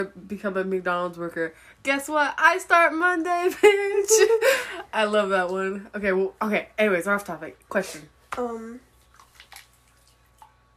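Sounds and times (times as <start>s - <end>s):
speech: 0.0s - 8.9s
wet squelching and dripping of a girl playing in wet sand and water: 8.9s - 10.7s.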